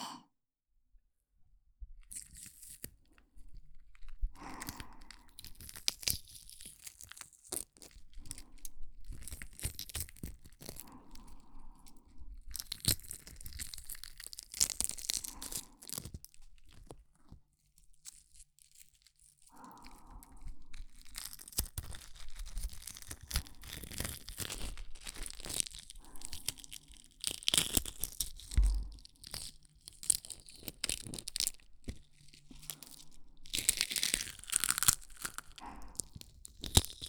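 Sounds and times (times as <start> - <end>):
shell and thin membrane being peeled from a boiled egg: 4.0 - 11.0, 12.4 - 17.0, 19.8 - 37.0.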